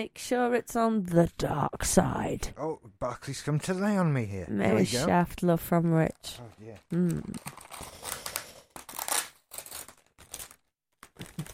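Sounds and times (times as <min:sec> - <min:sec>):
speech: 0:00.0 - 0:08.0
wrapping paper crinkling and crumpling: 0:06.4 - 0:11.5.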